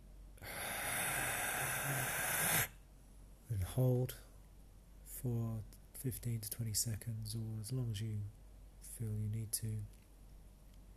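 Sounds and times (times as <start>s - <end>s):
deep inhale through the nose during a guided breathing exercise: 0.4s - 2.8s
speech: 3.8s - 4.3s, 5.2s - 10.0s.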